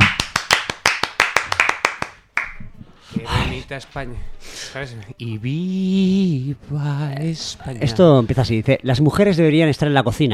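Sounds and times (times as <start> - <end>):
hand claps from one or two people: 0.0 - 2.6
speech: 3.2 - 10.3.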